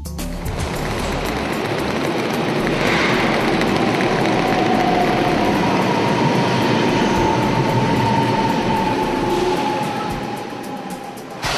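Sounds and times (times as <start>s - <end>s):
train rolling along rails: 0.2s - 11.5s.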